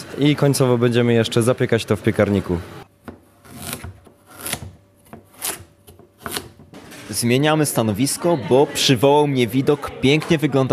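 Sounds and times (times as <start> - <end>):
speech: 0.2 - 2.8, 7.2 - 10.7
knife chopping bell peppers on a cutting board: 3.0 - 6.9
soft knife scraping on a cutting board: 3.3 - 7.1.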